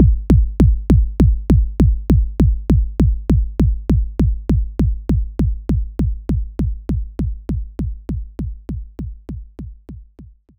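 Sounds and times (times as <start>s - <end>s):
electronic kick drum: 0.0s - 10.5s.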